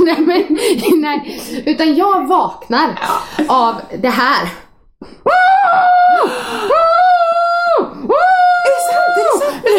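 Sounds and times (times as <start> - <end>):
speech: 0.1 - 6.9
person screaming face-down into a pillow: 5.3 - 9.4.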